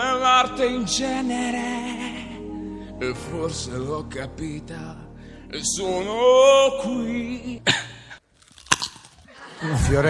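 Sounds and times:
speech: 0.4s - 2.1s, 3.0s - 8.0s, 9.6s - 10.0s
breathing: 5.2s - 5.5s
person biting into a raw carrot: 8.3s - 9.3s
chewing a raw carrot: 8.4s - 9.3s.

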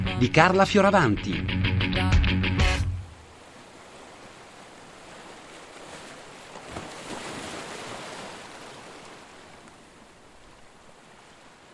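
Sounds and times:
speech: 0.2s - 1.5s
rough sea waves: 2.8s - 11.7s.

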